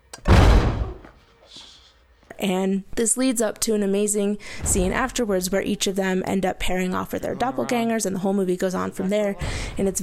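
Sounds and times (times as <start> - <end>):
body slamming against door: 0.2 - 1.2
speech: 2.4 - 10.0.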